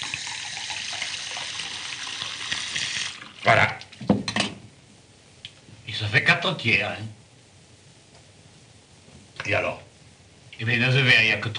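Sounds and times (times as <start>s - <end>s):
water pouring into a glass: 0.0s - 3.6s
speech: 3.4s - 3.8s, 6.4s - 7.2s, 9.5s - 9.8s, 10.6s - 11.5s.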